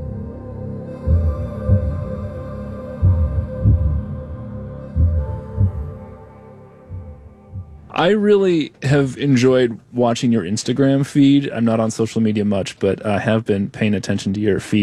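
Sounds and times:
slow heartbeat in double beats: 0:00.0 - 0:08.2
steady droning hum: 0:00.0 - 0:13.0
speech: 0:08.0 - 0:14.8.

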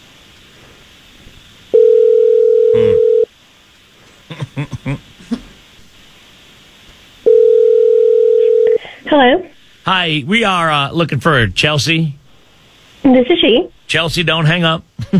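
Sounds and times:
steady telephone dial tone while a call is placed: 0:01.8 - 0:03.3, 0:07.3 - 0:08.8
laughter: 0:04.3 - 0:05.5, 0:15.0 - 0:15.1
speech: 0:10.0 - 0:12.2, 0:13.0 - 0:15.1.

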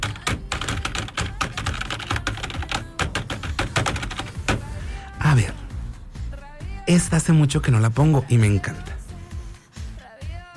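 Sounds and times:
typing on a computer keyboard: 0:00.0 - 0:04.6
speech: 0:05.3 - 0:05.6, 0:06.9 - 0:09.0.

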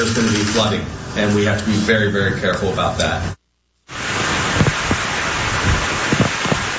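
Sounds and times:
speech: 0:00.0 - 0:03.4
heavy drenching rain: 0:03.9 - 0:06.7.

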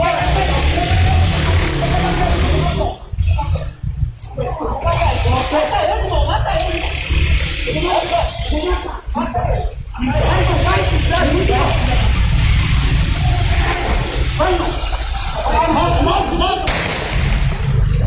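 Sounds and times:
laughter: 0:00.0 - 0:17.7
agitated voices talking and shouting on a security-camera recording: 0:00.0 - 0:18.0
single sharp loud gunshot: 0:16.6 - 0:18.0.

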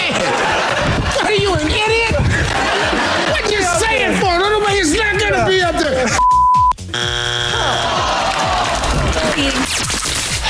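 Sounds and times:
crowd clapping: 0:00.0 - 0:04.2, 0:07.3 - 0:10.4
crowd cheering: 0:00.0 - 0:06.0, 0:07.0 - 0:09.8
laughter: 0:00.0 - 0:06.2, 0:07.5 - 0:09.6
high beep: 0:06.2 - 0:06.8
loud harsh quiz buzzer blaring: 0:06.2 - 0:08.1.

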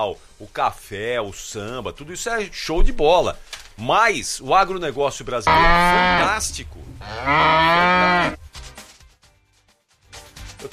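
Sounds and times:
speech: 0:00.0 - 0:08.4
quieter scattered low sounds: 0:05.2 - 0:08.5
ox mooing with a rich harmonic tone: 0:05.5 - 0:08.4.

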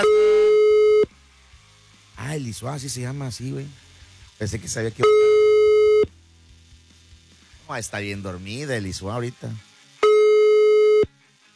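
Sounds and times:
speech: 0:00.0 - 0:00.2, 0:02.4 - 0:05.3, 0:07.7 - 0:09.7
loud steady electronic telephone tone: 0:00.0 - 0:01.1, 0:05.0 - 0:06.1, 0:10.0 - 0:11.1.

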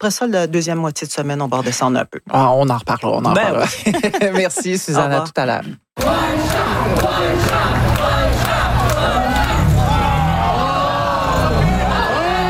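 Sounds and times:
speech: 0:00.0 - 0:08.2
laughter: 0:03.3 - 0:05.3
crowd of spectators at a street competition in Philadelphia yelling and cheering: 0:06.0 - 0:12.4.

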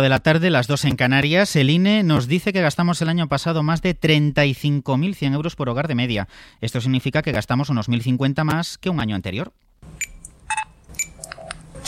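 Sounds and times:
speech: 0:00.0 - 0:10.1
supermarket checkout electronic beeps: 0:10.0 - 0:11.8.

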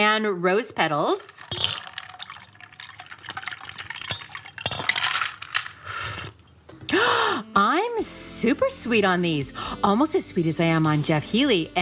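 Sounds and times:
speech: 0:00.1 - 0:01.7, 0:08.0 - 0:11.8
ice rattling and clinking in a cocktail shaker: 0:01.0 - 0:05.9
liquid pouring into a glass: 0:01.2 - 0:05.7.

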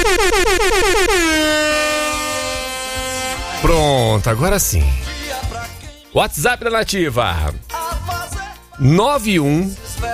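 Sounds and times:
loud air horn toots and blast: 0:00.0 - 0:04.0
speech: 0:04.2 - 0:05.1, 0:06.2 - 0:07.7, 0:08.8 - 0:10.1.

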